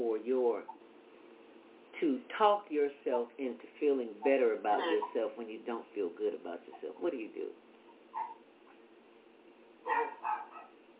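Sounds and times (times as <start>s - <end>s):
low steady hum: 0.0s - 10.9s
speech: 2.0s - 8.2s
dog whimpering: 4.7s - 5.1s, 8.1s - 8.4s, 9.9s - 10.7s
dog yipping and barking: 8.1s - 8.4s, 9.8s - 10.8s.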